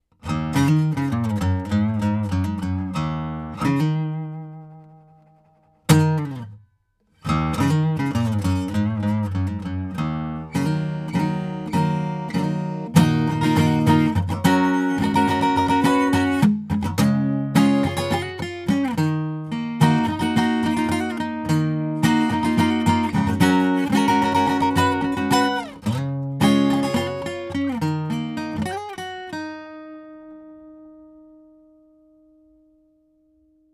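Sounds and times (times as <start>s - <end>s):
dark acoustic guitar through tube: 0.0s - 33.7s.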